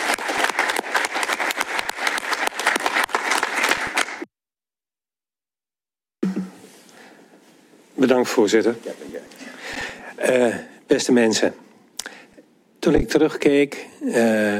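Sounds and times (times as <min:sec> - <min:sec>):
roomful of people applauding warmly: 0:00.0 - 0:04.3
speech: 0:08.0 - 0:09.4, 0:10.3 - 0:11.6, 0:12.9 - 0:14.5.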